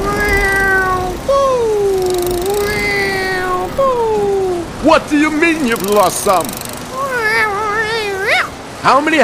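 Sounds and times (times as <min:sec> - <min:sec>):
cat meowing: 0:00.0 - 0:04.6, 0:06.9 - 0:08.6
speech: 0:04.8 - 0:06.6, 0:08.8 - 0:09.2.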